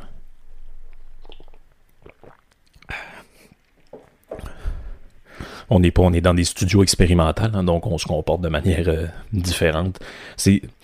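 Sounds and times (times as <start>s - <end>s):
person sipping and slurping coffee: 0.6s - 5.2s
soft swallows and gulps: 0.6s - 5.2s
speech: 5.7s - 10.8s.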